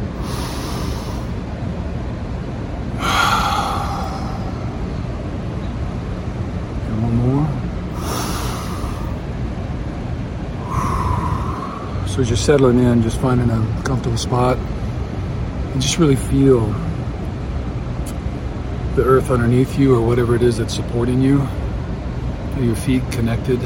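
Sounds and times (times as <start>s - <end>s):
steady noise: 0.0s - 23.6s
deep breaths inhaled during a guided relaxation: 0.1s - 1.4s, 3.0s - 4.8s, 7.9s - 9.2s, 10.6s - 12.1s
speech: 12.2s - 14.8s, 15.8s - 16.9s, 19.0s - 21.6s, 22.6s - 23.6s.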